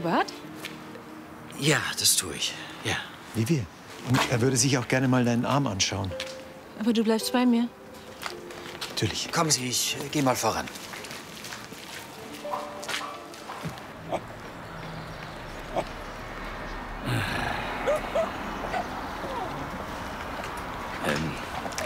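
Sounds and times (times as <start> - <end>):
speech: 0.0 - 0.6, 1.6 - 8.4, 9.0 - 10.9
busy noisy outdoor background: 0.0 - 21.8
dog giving short sharp barks: 12.5 - 14.3, 15.7 - 15.9, 17.8 - 19.6.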